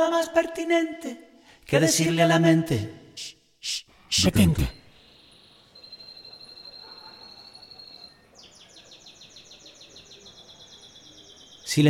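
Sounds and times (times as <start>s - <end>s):
speech: 0.0s - 4.8s
canary singing: 4.3s - 11.8s.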